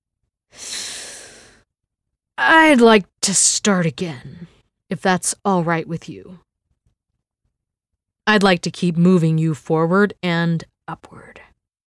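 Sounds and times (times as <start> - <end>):
long drawn breath: 0.5 - 1.7
speech: 2.4 - 6.4, 8.3 - 11.5.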